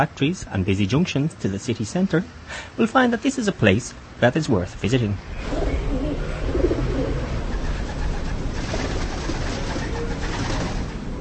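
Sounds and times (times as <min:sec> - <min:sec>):
speech: 0:00.0 - 0:05.7
outdoor noise: 0:00.0 - 0:11.1
pigeons cooing softly: 0:05.3 - 0:10.9.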